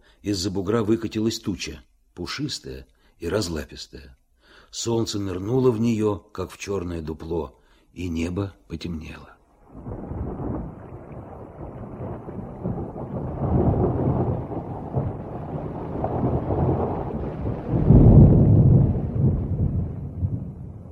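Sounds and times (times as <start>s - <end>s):
speech: 0.2s - 10.2s
low heavy thunder rumbling as a storm approaches: 9.7s - 20.9s.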